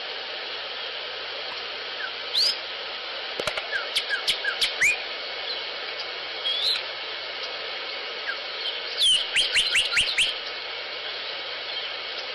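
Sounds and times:
steady hiss: 0.0s - 12.3s
Sinaloa Wren calls: 1.5s - 2.7s, 3.4s - 6.9s, 8.2s - 12.0s.

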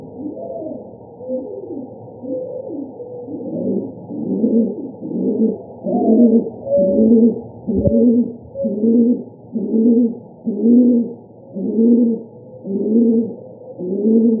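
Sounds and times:
rock pigeon cooing in Arizona: 0.0s - 14.3s.

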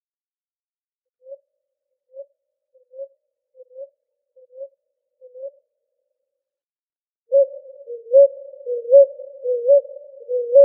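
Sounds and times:
ruddy ground dove cooing in Arizona: 7.3s - 10.6s.

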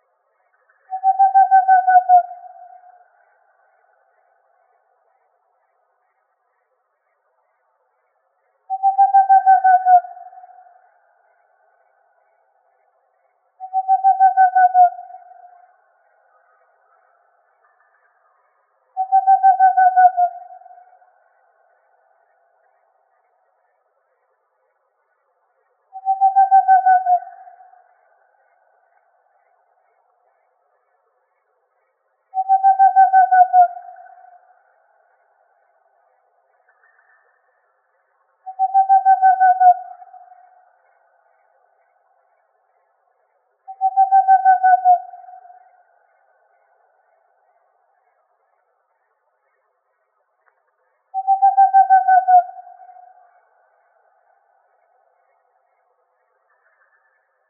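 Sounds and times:
Whiskered Screech-Owl calling: 0.6s - 3.6s, 8.7s - 11.9s, 13.6s - 18.1s, 19.0s - 21.2s, 25.9s - 28.7s, 32.3s - 35.1s, 38.4s - 41.2s, 43.7s - 47.0s, 51.1s - 54.2s.

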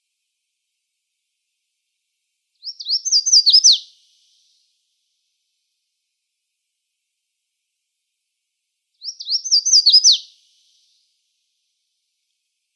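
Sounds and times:
red-faced warbler singing in Arizona: 2.6s - 3.8s, 9.0s - 10.2s.

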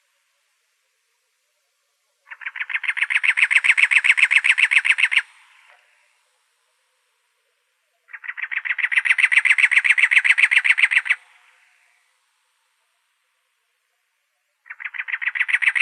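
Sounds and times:
cactus wren chattering in Arizona: 2.3s - 5.7s, 8.0s - 12.0s, 14.6s - 15.8s.

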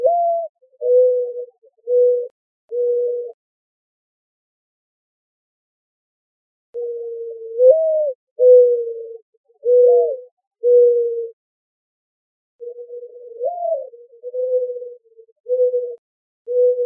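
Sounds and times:
mourning dove cooing in Arizona: 0.0s - 3.4s, 6.8s - 11.4s, 12.6s - 16.8s.

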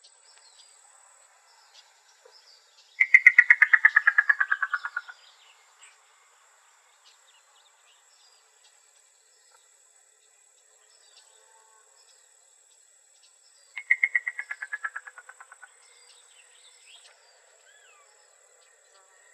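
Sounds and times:
yellow-billed cuckoo knocking call in Arizona: 3.0s - 5.1s, 13.8s - 15.6s.

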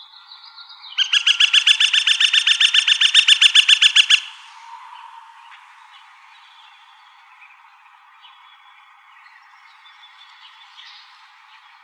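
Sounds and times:
Gilded Flicker woodpecker ringing call: 1.0s - 4.7s.

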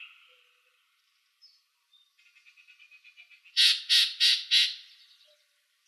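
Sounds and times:
Yellow-breasted Chat harsh chack calls in Arizona: 3.6s - 4.8s.

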